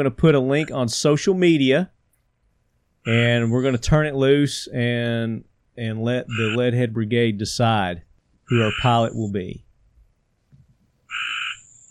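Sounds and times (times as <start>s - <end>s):
speech: 0.0s - 2.0s, 3.0s - 9.6s
frog croaking loudly: 6.3s - 6.6s, 8.5s - 9.1s, 11.1s - 11.8s.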